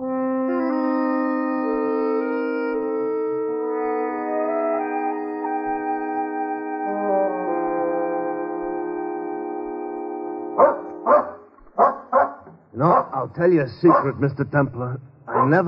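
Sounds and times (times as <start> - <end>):
orchestral music: 0.0 - 11.6
dog barking: 10.6 - 13.2, 13.8 - 14.2, 15.3 - 15.6
speech: 12.8 - 15.6.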